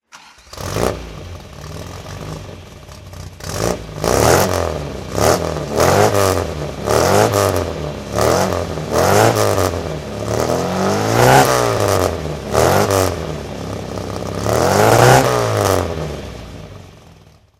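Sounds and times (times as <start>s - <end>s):
MG MGA coupe rally car throttle: 0.2s - 17.1s.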